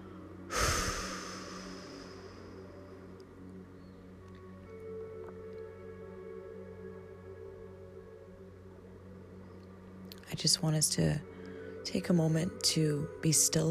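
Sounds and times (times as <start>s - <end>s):
faint steady hum: 0.0s - 13.7s
person breathing out during a guided relaxation exercise: 0.5s - 2.6s
speech: 10.3s - 11.3s, 11.9s - 13.7s.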